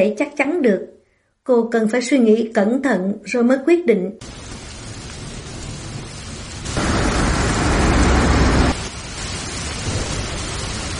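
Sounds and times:
speech: 0.0s - 4.6s
heavy rain beating against a window during a thunderstorm: 4.2s - 10.9s.

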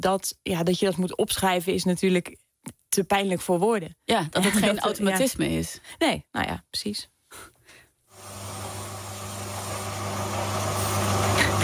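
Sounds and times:
speech: 0.0s - 7.5s
angle grinder running: 8.1s - 11.6s.

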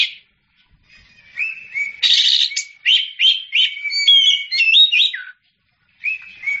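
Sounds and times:
Oriental magpie-robin singing whistled and chattering phrases: 0.0s - 0.3s, 1.1s - 5.4s, 6.0s - 6.5s.

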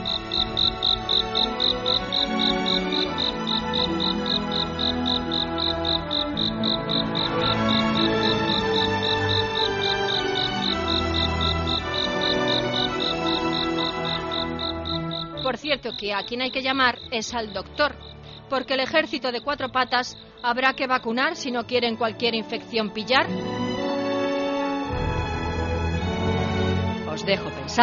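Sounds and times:
cricket chirping at night: 0.0s - 21.9s
soft music: 0.0s - 27.8s
speech: 15.8s - 23.5s, 27.2s - 27.8s.

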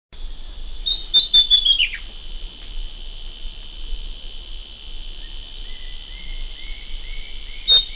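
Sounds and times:
constant high buzzing background: 0.2s - 7.9s
Southern Chestnut-tailed Antbird Myrmeciza hemimelaena hemimelaena singing: 0.6s - 2.1s, 5.1s - 7.9s.

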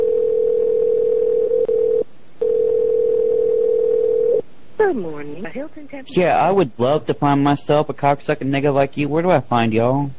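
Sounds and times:
telephone dial tone: 0.0s - 4.4s
speech: 4.9s - 10.1s.

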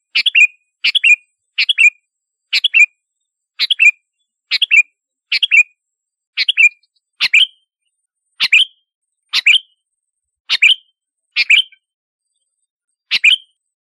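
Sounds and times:
sooty-headed bulbul giving short chirpy phrases: 0.1s - 3.0s, 3.6s - 5.8s, 6.4s - 7.7s, 8.4s - 9.8s, 10.5s - 11.9s, 13.1s - 13.6s.

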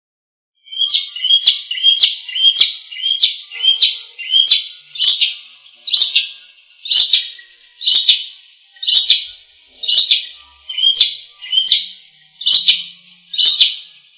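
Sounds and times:
bird chirping song from Indonesia: 0.6s - 14.1s.

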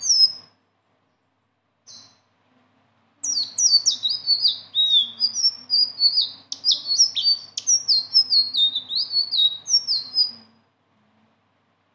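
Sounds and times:
leafbird song of high sweet down-slurred whistled notes: 0.0s - 0.6s, 1.9s - 2.3s, 3.2s - 10.5s.

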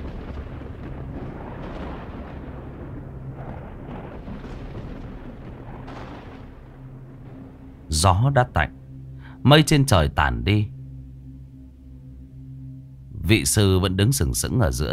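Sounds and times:
lightning strike hitting a metal staff with explosive thunderclap: 0.0s - 7.8s
speech: 7.9s - 8.8s, 9.4s - 10.7s, 13.3s - 14.9s.

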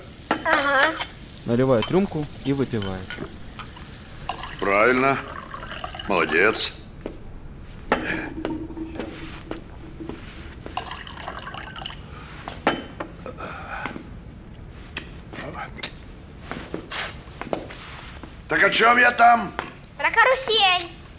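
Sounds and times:
running water: 0.0s - 12.4s
dishes clinking while being washed by a boy: 0.3s - 13.1s
speech: 0.5s - 3.4s, 4.6s - 5.3s, 6.1s - 6.8s, 18.7s - 21.0s.

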